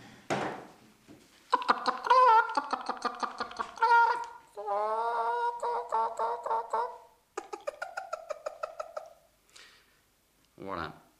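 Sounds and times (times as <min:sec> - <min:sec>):
voice imitating a hen cackling after laying an egg: 0:01.5 - 0:09.2.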